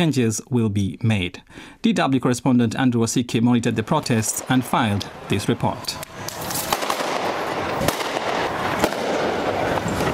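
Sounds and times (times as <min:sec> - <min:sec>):
speech: 0:00.0 - 0:06.1
dense roaring outdoor din: 0:02.4 - 0:10.1
gunshot-like bangs from firearms or tear gas canisters: 0:06.3 - 0:10.1.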